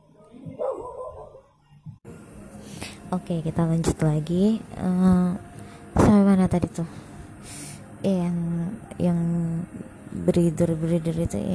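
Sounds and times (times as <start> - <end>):
noise: 0.0 - 11.5
dog barking outside: 0.5 - 1.5
speech: 3.1 - 11.5.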